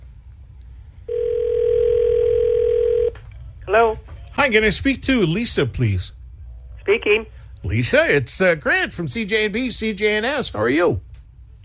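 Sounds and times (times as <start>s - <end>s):
steady electronic telephone line tone: 1.1s - 3.2s
speech: 4.5s - 6.2s, 6.9s - 11.1s.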